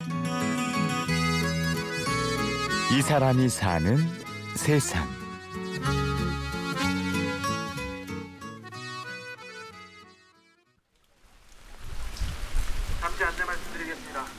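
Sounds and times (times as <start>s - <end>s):
instrumental music: 0.0s - 10.8s
speech: 2.9s - 5.2s
steady autumn rainfall: 10.9s - 14.3s.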